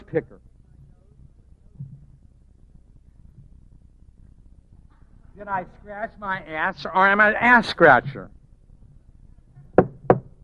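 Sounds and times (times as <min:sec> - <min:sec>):
speech: 0:00.1 - 0:00.5, 0:05.4 - 0:08.4
knuckles rapping on a wooden podium: 0:09.7 - 0:10.4.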